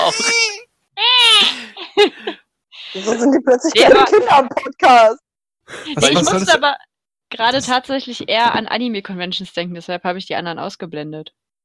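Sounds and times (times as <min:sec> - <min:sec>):
person imitating baby crying: 0:00.0 - 0:01.6
speech: 0:03.0 - 0:11.4.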